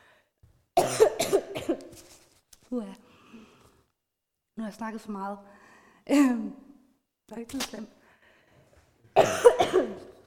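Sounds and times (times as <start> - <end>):
raspy coughs: 0.8 - 1.9, 9.2 - 10.2
speech: 2.7 - 3.0, 4.6 - 6.7, 7.3 - 8.0.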